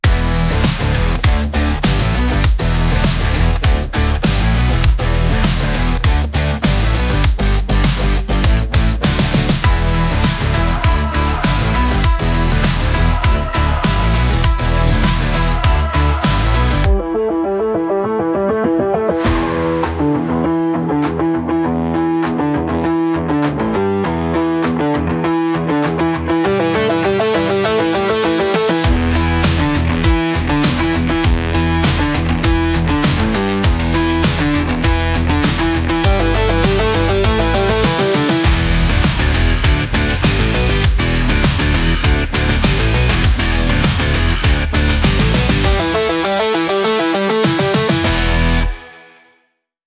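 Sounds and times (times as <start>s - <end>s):
100 bpm AI social media electronic music: 0.0s - 49.3s.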